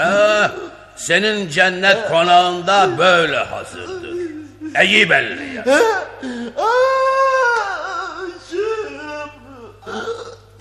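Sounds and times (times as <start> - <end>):
person crying and sobbing: 0.0 - 1.0, 3.4 - 10.5
speech: 0.0 - 4.1, 4.7 - 7.0.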